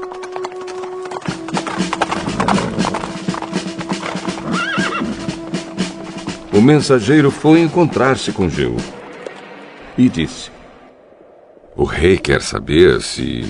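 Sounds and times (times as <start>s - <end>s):
horse hooves clip-clopping: 0.0s - 9.7s
horse whinnying: 1.3s - 5.4s
speech: 6.6s - 9.0s, 10.0s - 10.6s, 11.8s - 13.4s.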